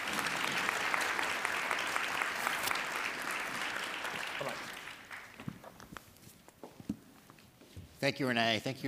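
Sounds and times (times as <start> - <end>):
audience applause for a panel: 0.0 - 5.5
speech: 8.0 - 8.8.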